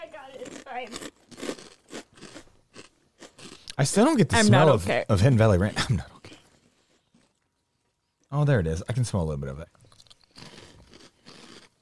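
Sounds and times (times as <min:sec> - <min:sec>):
speech: 0:00.2 - 0:01.4, 0:03.8 - 0:06.1, 0:08.4 - 0:09.8
crunching of a crisp corn snack being chewed: 0:00.4 - 0:03.8, 0:05.6 - 0:07.6, 0:09.8 - 0:11.7.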